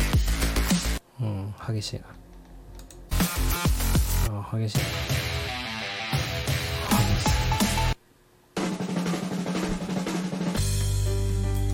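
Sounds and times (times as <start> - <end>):
loud driving breakbeat stock background music with punchy drums: 0.0 - 1.0, 3.1 - 8.0, 8.6 - 11.6
speech: 1.6 - 2.2, 4.3 - 5.4.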